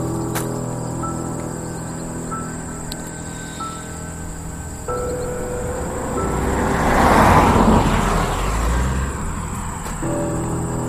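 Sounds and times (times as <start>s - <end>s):
crickets and insects chirping outdoors: 0.0s - 10.8s
car driving past on a road: 3.6s - 10.8s.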